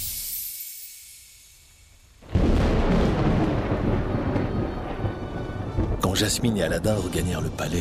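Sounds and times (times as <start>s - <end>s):
soft hissing rain: 2.2s - 7.7s
thunderclap rolling into heavy rumble: 2.2s - 7.7s
speech: 6.2s - 7.7s.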